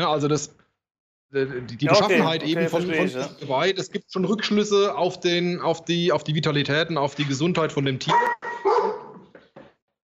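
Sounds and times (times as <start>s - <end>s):
speech: 0.0s - 0.6s, 1.3s - 8.4s
laughter: 1.8s - 3.5s
dog barking: 8.1s - 9.2s.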